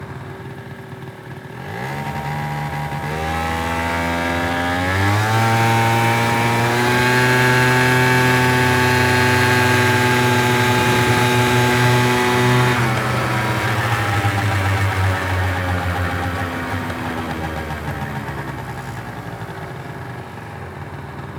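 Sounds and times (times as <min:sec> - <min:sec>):
1994 Piaggio Sfera 50cc scooter driving: 0:00.0 - 0:21.3.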